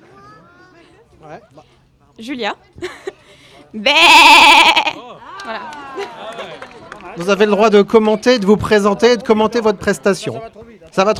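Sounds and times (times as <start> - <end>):
speech: 1.2 - 6.6, 7.2 - 11.1
laughter: 2.7 - 10.6
person imitating an old salt-meadow ewe bleating: 3.8 - 5.0.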